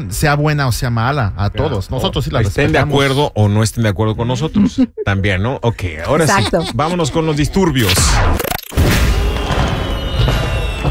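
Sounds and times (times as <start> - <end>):
speech: 0.0 - 8.6
laughter: 6.0 - 8.1
fireworks booming: 8.8 - 10.8.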